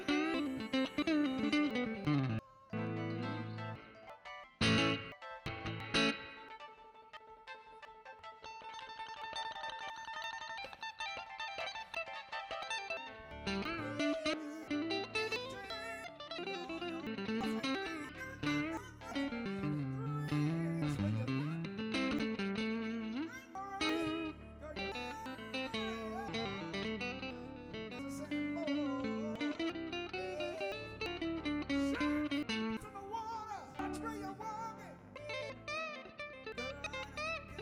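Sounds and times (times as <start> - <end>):
guitar in stereo: 0.0 - 37.6.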